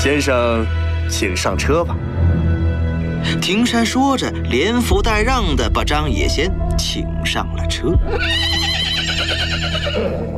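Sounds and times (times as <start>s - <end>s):
speech: 0.0s - 2.4s, 3.2s - 8.9s
carriage horse neighing: 8.1s - 10.3s.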